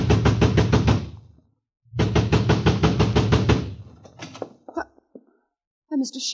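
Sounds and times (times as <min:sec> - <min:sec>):
fist pounding on a front door: 0:00.0 - 0:01.3, 0:01.9 - 0:03.9
faint knocks and rattles: 0:03.8 - 0:05.4.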